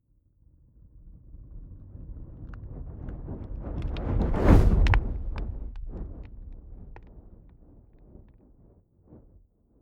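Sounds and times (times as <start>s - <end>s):
fire whoosh: 3.9s - 6.9s.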